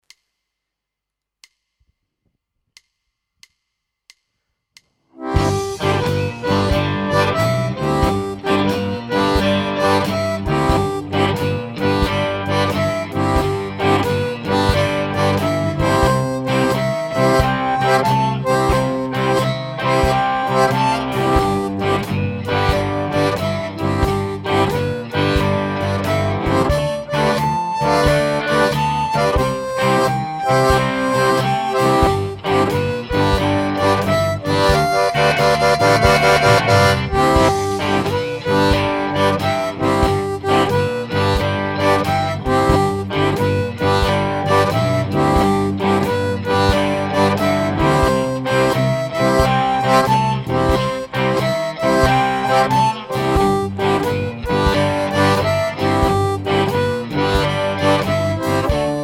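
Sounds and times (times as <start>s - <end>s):
harmonica shuffle boogie in single notes with tongue blocking: 5.2s - 59.0s.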